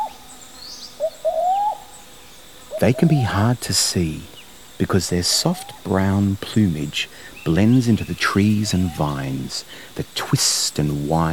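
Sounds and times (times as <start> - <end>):
faint higher bird calls: 0.0 - 3.5, 5.2 - 6.0, 7.1 - 9.8
brown cuckoo dove calling in a rainforest: 0.0 - 11.3
speech: 2.8 - 11.3.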